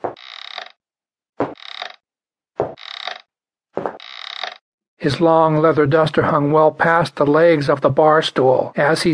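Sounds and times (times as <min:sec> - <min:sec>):
footsteps on creaking wooden floor: 0:00.0 - 0:00.7, 0:01.4 - 0:02.0, 0:02.6 - 0:03.2, 0:03.8 - 0:04.6
speech: 0:05.0 - 0:09.1.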